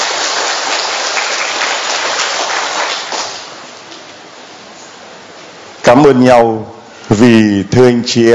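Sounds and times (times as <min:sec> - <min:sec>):
large church audience applauding: 0:00.0 - 0:03.6
speech: 0:05.9 - 0:08.3.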